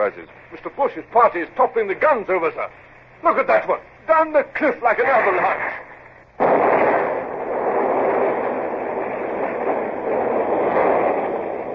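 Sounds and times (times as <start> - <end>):
speech: 0.0 - 5.9
ship's powder magazine explosion, radio drama effect: 6.4 - 11.7.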